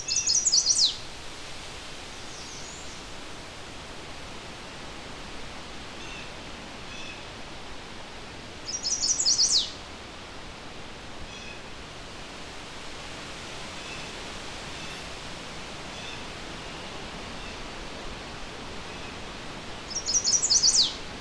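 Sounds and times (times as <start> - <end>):
chestnut-sided warbler singing bright phrases: 0.0 - 1.0, 8.7 - 9.8, 19.9 - 21.0
steady hiss: 0.0 - 21.1.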